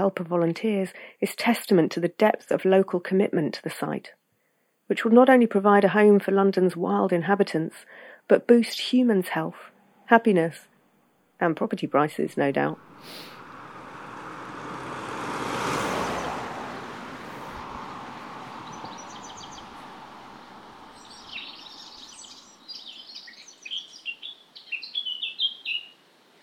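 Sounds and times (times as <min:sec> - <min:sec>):
speech: 0:00.0 - 0:04.2, 0:04.9 - 0:10.7, 0:11.4 - 0:13.3
rush of traffic-like noise: 0:12.7 - 0:22.6
Eurasian blackcap song in spring woodland: 0:18.2 - 0:26.4.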